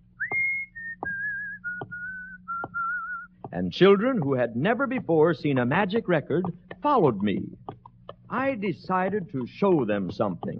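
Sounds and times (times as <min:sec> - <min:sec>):
low steady hum: 0:00.0 - 0:10.5
person whistling a simple tune while walking down a street: 0:00.2 - 0:03.4
speech: 0:03.5 - 0:07.6, 0:08.3 - 0:10.5.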